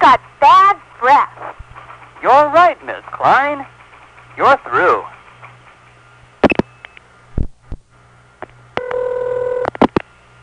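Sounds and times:
speech: 0.1s - 0.3s, 1.0s - 1.3s, 2.2s - 3.8s, 4.4s - 5.1s
electronic telephone dialing tones: 8.8s - 9.7s.

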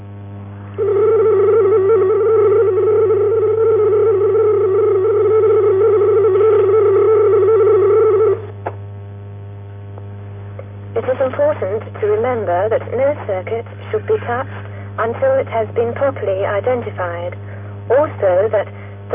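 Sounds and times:
faint low hum: 0.0s - 19.1s
75 bits-per-second supervisory channel data tone on Datel 600 and 2400 services: 0.8s - 8.5s
speech: 12.5s - 19.1s.

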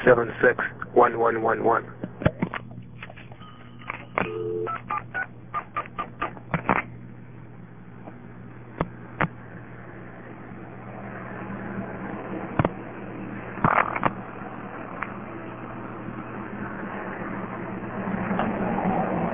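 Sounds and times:
steady low hum: 0.0s - 19.3s
speech: 0.1s - 2.0s
touch-tone beeps of a phone number being keyed in: 3.4s - 4.9s.

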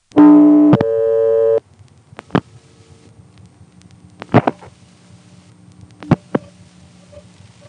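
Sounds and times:
telephone supervision test tone on a dialed trunk line: 0.0s - 1.6s
low hum: 0.0s - 7.6s
brief tonal blips: 0.1s - 1.6s.

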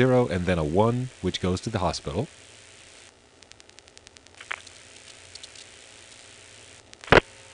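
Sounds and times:
speech: 0.0s - 2.5s
faint mechanical clicks from a telephone exchange register sender: 3.4s - 7.3s.

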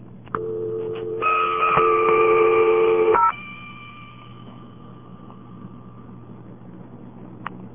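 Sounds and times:
telephone line tone while dialing the operator: 0.4s - 5.0s.

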